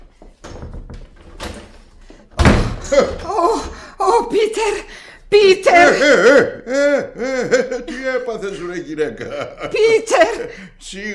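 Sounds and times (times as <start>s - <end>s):
door being opened: 0.0s - 3.8s
speech: 2.9s - 3.4s, 4.3s - 11.1s
laughter: 5.8s - 10.5s.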